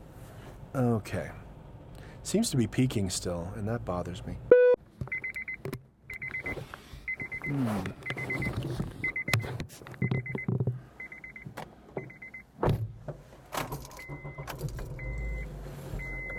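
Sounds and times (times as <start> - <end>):
speech: 0.7 - 1.4, 2.2 - 4.6, 7.5 - 8.0
car seatbelt warning short high beeps: 4.5 - 12.5, 14.0 - 16.3.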